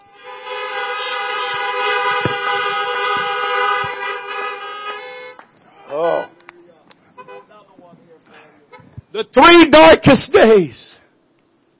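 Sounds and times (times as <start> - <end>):
car horn honking: 0.0 - 7.8, 8.6 - 9.0
faint thumps: 1.5 - 4.2
speech: 9.3 - 10.9.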